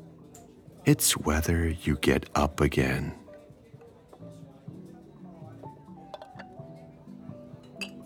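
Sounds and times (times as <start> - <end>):
speech: 0.8 - 3.2
murmur of voices in a busy jazz cafe: 0.9 - 3.2
dishes clinking in a busy jazz cafe: 7.7 - 8.0
glasses clinking in a busy jazz cafe: 7.8 - 8.0.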